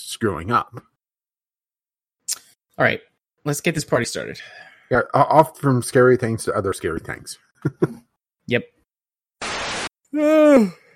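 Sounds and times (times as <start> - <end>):
speech: 0.0 - 0.9, 2.8 - 8.8, 10.1 - 10.8
person yawning: 10.1 - 10.9.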